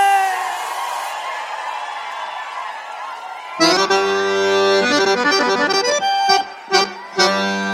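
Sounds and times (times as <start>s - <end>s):
large crowd shouting and cheering: 0.0s - 7.7s
loud instrumental music with held chord-like tones: 3.6s - 7.7s.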